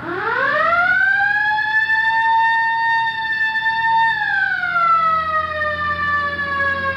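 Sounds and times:
loud police car siren: 0:00.0 - 0:06.9.

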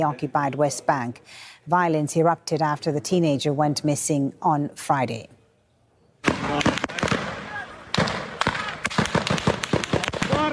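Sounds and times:
speech: 0:00.0 - 0:05.4
gunfire fired to disperse Palestinians confronting settlers: 0:06.2 - 0:10.5
people shouting: 0:07.4 - 0:08.9, 0:09.8 - 0:10.5.

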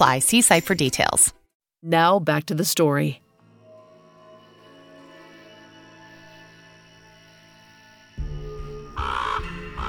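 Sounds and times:
speech: 0:00.0 - 0:03.2
raven cawing: 0:09.0 - 0:09.8.

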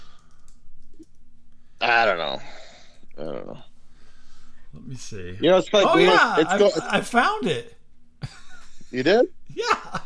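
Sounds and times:
typing on a computer keyboard: 0:00.1 - 0:01.2
speech: 0:01.8 - 0:02.6, 0:03.2 - 0:03.7, 0:04.7 - 0:10.0.

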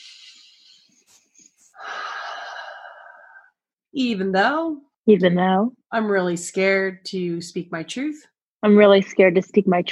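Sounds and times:
deep breath in and out during an EFT tapping session: 0:01.7 - 0:03.6
speech: 0:03.9 - 0:09.8.

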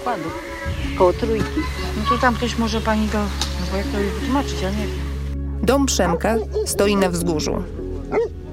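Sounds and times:
speech: 0:00.0 - 0:05.0, 0:05.6 - 0:08.4
large dog barking in the yard of a house on a hill: 0:08.1 - 0:08.4.

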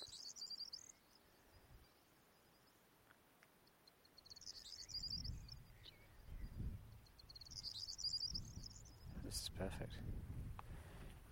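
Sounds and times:
corn bunting singing a dry jangling trill: 0:00.0 - 0:09.6
gusts of wind rumbling low: 0:05.0 - 0:11.2
speech: 0:09.6 - 0:10.4.

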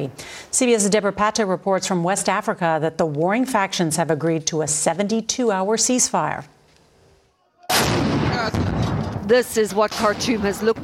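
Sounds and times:
speech: 0:00.0 - 0:06.6, 0:09.3 - 0:10.8
sharp gunshot crack: 0:07.7 - 0:09.2
gunfire burst in a city during urban warfare: 0:07.7 - 0:10.8.

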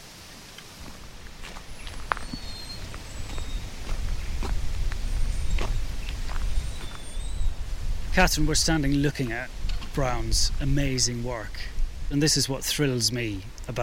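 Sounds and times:
footsteps along a path through a winter landscape garden: 0:00.4 - 0:07.5
speech: 0:08.2 - 0:13.8.

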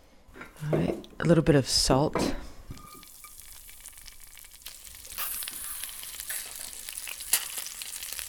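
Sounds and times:
speech: 0:00.6 - 0:02.4
frozen mealworms frying in oil with salt in a flat pan: 0:02.8 - 0:08.2.

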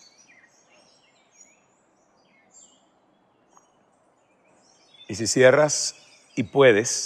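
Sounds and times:
several birds singing and chirping outdoors: 0:00.0 - 0:07.0
speech: 0:05.1 - 0:07.0.

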